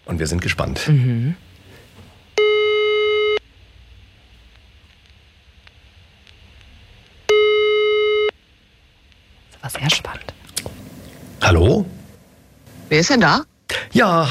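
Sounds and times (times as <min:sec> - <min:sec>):
speech: 0:00.1 - 0:01.5, 0:12.9 - 0:14.2
telephone ringback tone on an outgoing call to the district of Coesfeld: 0:02.4 - 0:03.4, 0:07.3 - 0:08.3.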